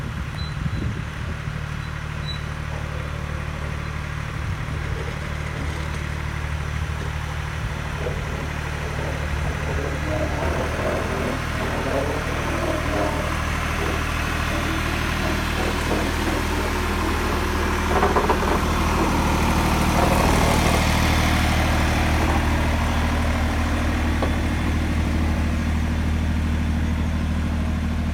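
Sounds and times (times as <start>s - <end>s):
vehicle cornering: 0.1s - 28.1s.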